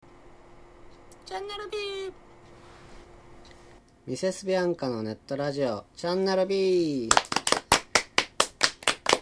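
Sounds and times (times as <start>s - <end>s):
speech: 1.3s - 2.3s, 4.0s - 7.3s
audience clapping for a band on an internet radio show: 7.0s - 9.1s.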